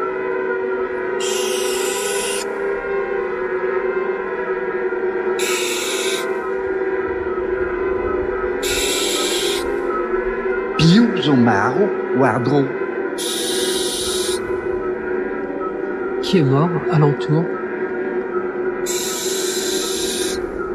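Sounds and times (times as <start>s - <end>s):
steady low droning hum: 0.0s - 16.9s, 17.5s - 20.7s
barn owl screeching: 1.0s - 2.8s, 5.4s - 6.7s, 8.4s - 10.2s, 13.2s - 15.0s, 18.8s - 20.7s
speech: 11.3s - 12.8s, 16.3s - 17.6s.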